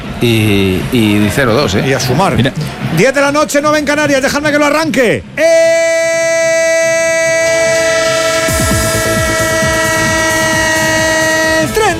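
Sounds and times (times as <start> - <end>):
speech: 0.2 - 6.2
train sound effect sustained horn-like tone: 7.5 - 11.8.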